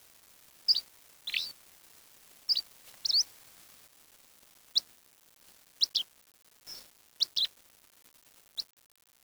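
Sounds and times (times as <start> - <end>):
bird chirps: 0.7 - 1.5, 2.5 - 3.3, 5.8 - 6.0, 6.7 - 7.5.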